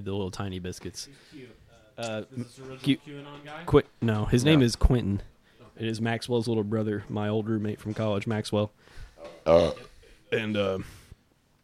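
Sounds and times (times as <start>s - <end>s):
speech: 0.0s - 11.0s
loud burps: 9.4s - 10.0s.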